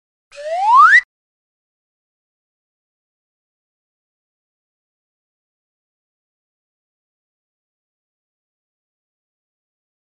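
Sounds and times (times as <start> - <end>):
slide whistle rising: 0.4 - 1.1.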